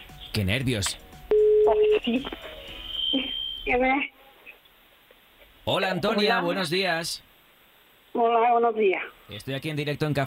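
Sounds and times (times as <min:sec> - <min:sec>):
speech: 0:00.4 - 0:02.5, 0:03.1 - 0:04.2, 0:05.6 - 0:07.3, 0:08.2 - 0:10.2
steady telephone tone: 0:01.3 - 0:03.8.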